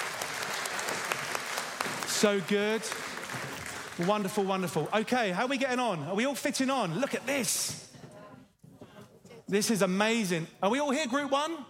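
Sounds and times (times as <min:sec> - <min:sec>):
audience applause: 0:00.0 - 0:05.1
speech: 0:02.2 - 0:07.8, 0:09.5 - 0:11.6.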